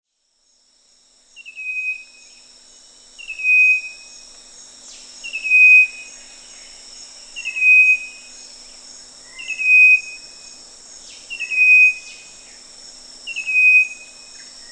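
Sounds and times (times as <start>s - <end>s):
steady high insect drone: 0.1s - 14.6s
striped wren-babbler call at Danum: 3.2s - 4.1s, 5.2s - 6.3s, 7.4s - 8.4s, 9.3s - 10.6s, 11.2s - 12.4s, 13.3s - 14.6s.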